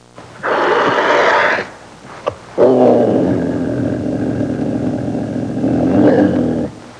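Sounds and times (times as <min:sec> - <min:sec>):
generic growling: 0:00.4 - 0:01.8, 0:02.6 - 0:06.8.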